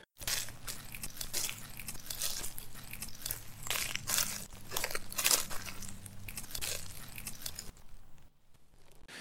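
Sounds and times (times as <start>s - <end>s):
animal walking through dry leaves: 0.2s - 8.3s.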